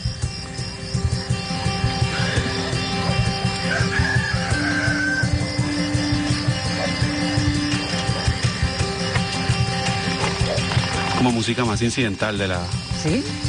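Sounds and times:
dense background of farmyard animal noise: 0.0 - 11.6
hens clucking: 1.7 - 11.2
rooster crowing in a busy farmyard: 2.1 - 7.4
speech: 11.2 - 13.4.

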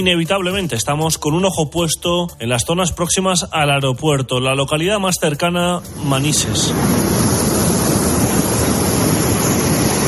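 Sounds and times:
speech: 0.0 - 7.5
floodwater rushing down a ravine: 5.8 - 10.0.

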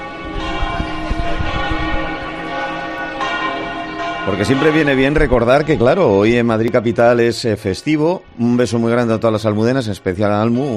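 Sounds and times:
church bells pealing: 0.0 - 10.7
speech: 4.2 - 10.7.

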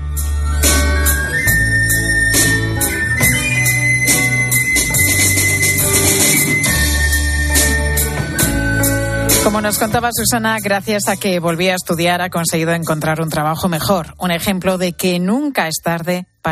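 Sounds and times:
band of teachers and students playing at a graduation: 0.0 - 10.8
deep bass line: 0.0 - 15.0
speech: 9.5 - 16.4.

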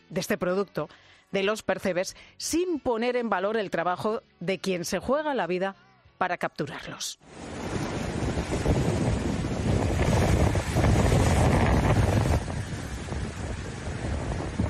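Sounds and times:
speech: 0.1 - 7.5
gusts of wind buffeting the microphone: 7.3 - 14.6
waves crashing against rocks: 7.3 - 14.6.

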